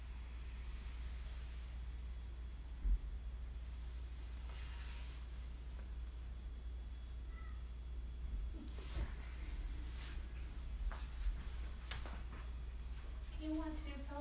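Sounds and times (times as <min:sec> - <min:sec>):
steady low hum: 0:00.0 - 0:14.2
cat meowing: 0:07.2 - 0:07.7.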